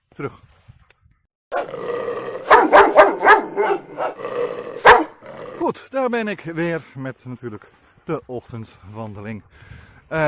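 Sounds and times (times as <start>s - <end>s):
speech: 0.2s - 0.6s, 5.6s - 10.2s
dog barking with whiny yipping: 2.5s - 4.2s, 4.8s - 5.2s.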